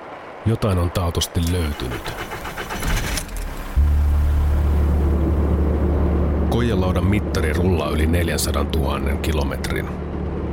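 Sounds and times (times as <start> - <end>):
speech: 0.4 - 2.4, 6.6 - 10.1
car engine drone: 1.7 - 8.2.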